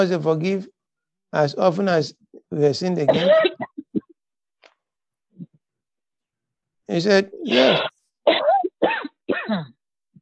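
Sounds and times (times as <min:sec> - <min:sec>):
speech: 0:00.0 - 0:03.6, 0:06.9 - 0:09.8
harsh raspy coughs: 0:03.0 - 0:04.2, 0:07.4 - 0:09.8.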